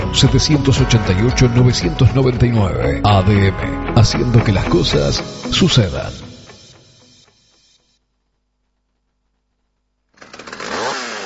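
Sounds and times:
speech: 0:00.1 - 0:06.2
chainsaw cutting native forest: 0:10.1 - 0:11.2.

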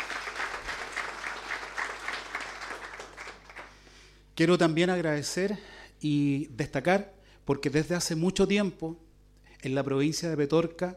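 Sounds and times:
audience applause: 0:00.0 - 0:03.8
speech: 0:04.4 - 0:09.0, 0:09.6 - 0:10.9.

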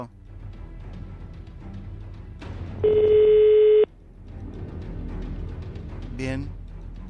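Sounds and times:
speech: 0:00.0 - 0:00.2
electronic telephone tone while a mobile phone is being called: 0:02.8 - 0:03.9.

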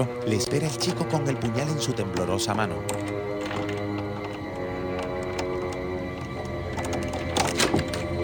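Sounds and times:
speech: 0:00.0 - 0:03.3
metallic clicks and scrapes of a lock being forced: 0:01.8 - 0:08.2.

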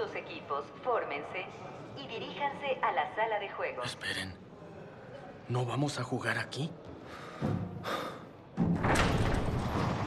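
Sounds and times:
speech: 0:00.5 - 0:04.4, 0:05.5 - 0:08.2
massive door booming thuds: 0:08.6 - 0:10.0.

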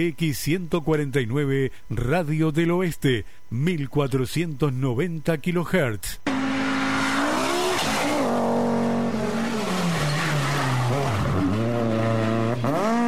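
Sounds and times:
speech: 0:00.0 - 0:06.4
loud car engines starting and accelerating hard: 0:06.3 - 0:13.0
squeal of tires: 0:06.3 - 0:13.0.

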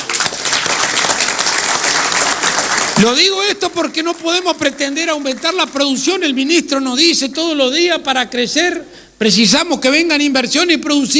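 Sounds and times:
audience applause at a speech honouring public officials: 0:00.0 - 0:06.0
speech: 0:03.0 - 0:11.1.

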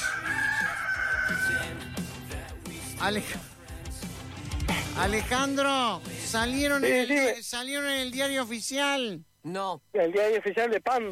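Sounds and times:
rooster crowing: 0:00.0 - 0:01.9
dense busy music-like sound: 0:00.0 - 0:07.3
speech: 0:03.0 - 0:03.5, 0:05.0 - 0:11.1.

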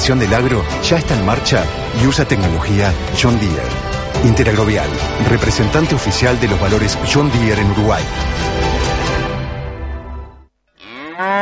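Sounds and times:
speech: 0:00.0 - 0:08.9
cow mooing: 0:10.8 - 0:11.4.

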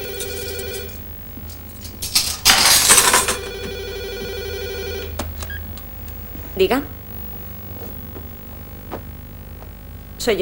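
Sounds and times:
telephone ringing: 0:00.0 - 0:01.0, 0:02.4 - 0:05.8
cutlery grabbed from a kitchen drawer jangling: 0:02.0 - 0:03.5
speech: 0:06.6 - 0:07.0, 0:10.2 - 0:10.4.

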